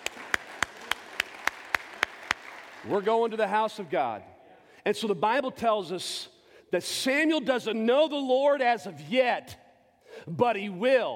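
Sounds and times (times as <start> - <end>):
congregation in a church clapping hands: 0.0 - 3.6
speech: 2.8 - 9.6, 10.2 - 11.1.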